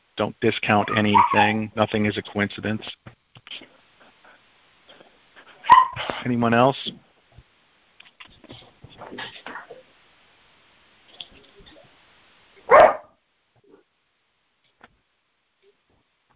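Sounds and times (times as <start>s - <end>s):
speech: 0.2s - 3.7s, 6.2s - 7.0s, 8.5s - 9.4s
dog barking: 0.8s - 1.6s, 5.6s - 6.0s, 12.7s - 13.1s.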